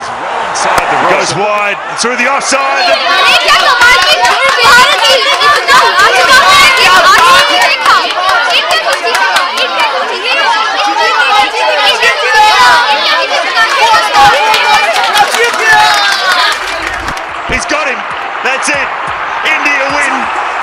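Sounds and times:
dense crowd chatter in a large venue: 0.0s - 20.6s
speech: 1.2s - 9.3s, 17.6s - 20.4s.

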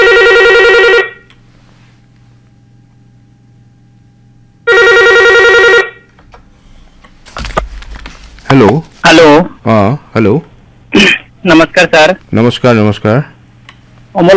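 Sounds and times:
telephone ringing for an incoming call: 0.0s - 1.3s, 4.6s - 6.1s
low steady hum: 0.0s - 14.3s
speech: 8.6s - 13.4s, 14.1s - 14.3s.

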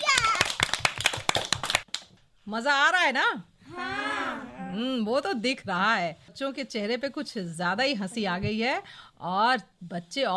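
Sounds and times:
people clapping for young children: 0.0s - 2.2s
speech: 2.5s - 10.3s.

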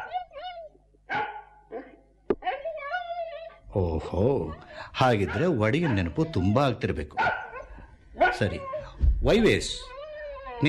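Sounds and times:
dog barking: 0.0s - 0.3s, 1.1s - 2.0s, 5.2s - 6.6s, 7.2s - 8.7s
speech: 3.8s - 7.4s, 8.3s - 9.9s.

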